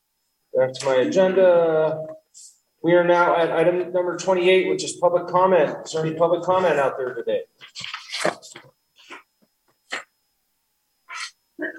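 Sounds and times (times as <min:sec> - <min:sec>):
speech: 0:00.6 - 0:08.7
person sneezing forcefully during a public meeting: 0:07.8 - 0:09.3, 0:09.9 - 0:10.1, 0:11.1 - 0:11.7.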